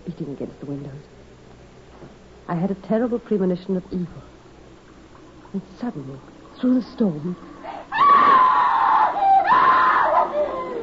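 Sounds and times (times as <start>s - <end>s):
speech: 0.2s - 1.2s, 2.0s - 4.3s, 5.5s - 7.5s
woman screaming at night: 7.7s - 10.8s.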